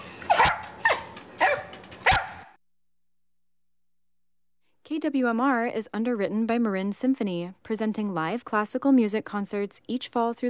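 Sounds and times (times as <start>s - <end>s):
dog barking: 0.2s - 2.5s
speech: 5.0s - 10.4s.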